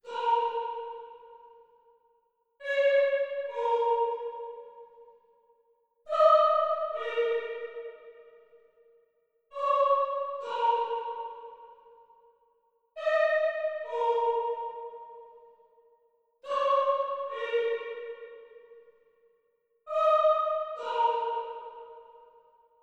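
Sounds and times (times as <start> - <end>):
choir in A sharp minor at 139 BPM: 0.0 - 1.7, 2.6 - 5.0, 6.1 - 8.4, 9.5 - 11.9, 13.0 - 15.4, 16.4 - 18.7, 19.9 - 22.4.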